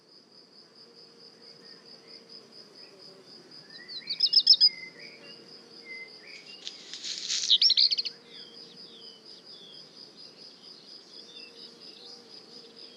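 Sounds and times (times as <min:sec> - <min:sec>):
shrill insect hum: 0:00.0 - 0:12.9
black redstart singing in le Puech France: 0:03.8 - 0:05.3, 0:05.9 - 0:08.6.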